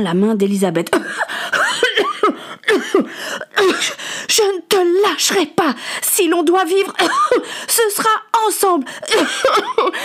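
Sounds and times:
speech: 0:00.0 - 0:01.4, 0:03.0 - 0:10.0
person acting out hoarse voiced coughing fit: 0:00.9 - 0:04.1, 0:06.8 - 0:08.4, 0:09.0 - 0:10.0.

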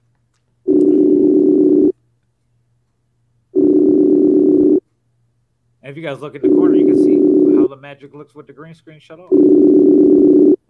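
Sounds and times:
phone call ringback tones at the other end: 0:00.7 - 0:01.9, 0:03.6 - 0:04.8, 0:06.4 - 0:07.7, 0:09.3 - 0:10.6
speech: 0:05.9 - 0:10.6.

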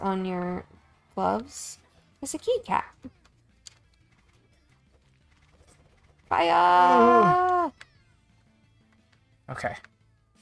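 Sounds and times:
speech: 0:00.0 - 0:03.2, 0:06.3 - 0:07.8, 0:09.5 - 0:09.9
cartoon cat meow in a video game: 0:06.6 - 0:07.8.

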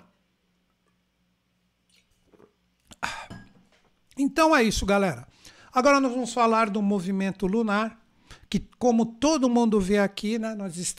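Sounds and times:
person sipping water: 0:01.8 - 0:03.2
speech: 0:04.2 - 0:10.9.

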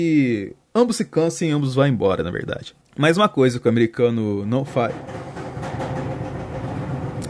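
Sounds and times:
speech: 0:00.0 - 0:05.4
washing machine at the end of its wash cycle running: 0:04.8 - 0:07.2.

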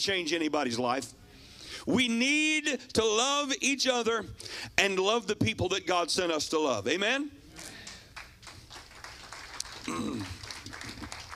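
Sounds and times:
speech: 0:00.0 - 0:01.2, 0:01.8 - 0:07.4
audience applause: 0:07.8 - 0:11.3.

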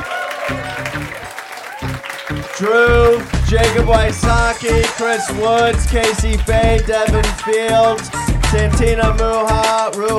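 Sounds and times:
audience applauding a panel: 0:00.0 - 0:07.5
speech: 0:02.6 - 0:10.1.

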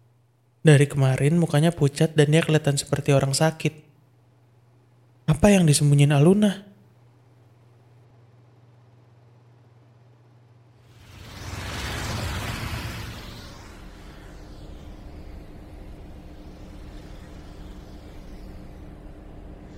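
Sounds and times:
speech: 0:00.6 - 0:03.9, 0:05.3 - 0:06.7
fainter passing vehicle whooshes: 0:10.8 - 0:19.7
vehicle roaring past: 0:10.9 - 0:19.7.

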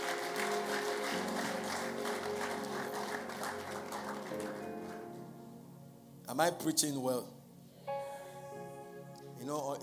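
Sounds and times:
audience applause: 0:00.0 - 0:05.2
speech: 0:06.3 - 0:07.4, 0:09.5 - 0:09.8.

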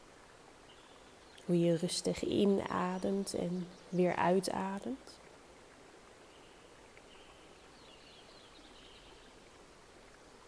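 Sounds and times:
steady rushing stream of water: 0:00.0 - 0:10.4
faint birdsong chirps and trills: 0:00.6 - 0:05.3, 0:06.0 - 0:09.6
speech: 0:01.5 - 0:05.2.

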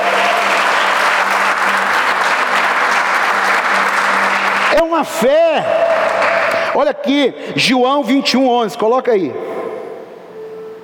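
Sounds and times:
large audience applauding: 0:00.0 - 0:06.9
speech: 0:04.8 - 0:06.1, 0:06.8 - 0:09.6.

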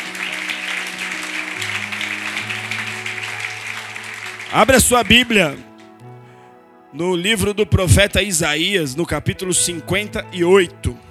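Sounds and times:
audience applauding: 0:00.0 - 0:06.4
sustained keyboard chords: 0:00.0 - 0:11.0
speech: 0:04.5 - 0:05.7, 0:06.9 - 0:11.0.

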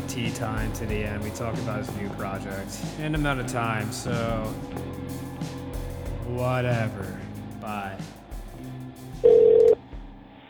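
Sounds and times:
speech: 0:00.2 - 0:05.6, 0:06.3 - 0:08.2
cell phone call ringing tone: 0:09.2 - 0:09.8.

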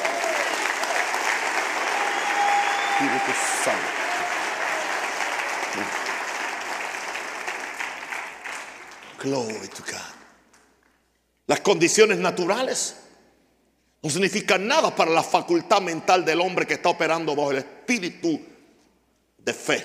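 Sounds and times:
crowd clapping loudly in a large room: 0:00.0 - 0:10.2
speech: 0:03.0 - 0:04.0, 0:05.8 - 0:06.0, 0:09.2 - 0:10.1, 0:11.6 - 0:13.0, 0:14.0 - 0:18.5, 0:19.4 - 0:19.8.

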